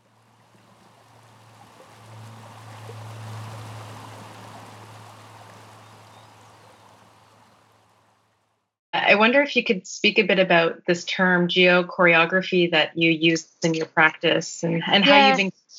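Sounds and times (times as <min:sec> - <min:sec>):
flowing river water rushing: 0:00.0 - 0:08.2
low constant hum: 0:00.0 - 0:14.0, 0:14.6 - 0:15.5
speech: 0:09.0 - 0:15.7
laughter: 0:14.7 - 0:15.4.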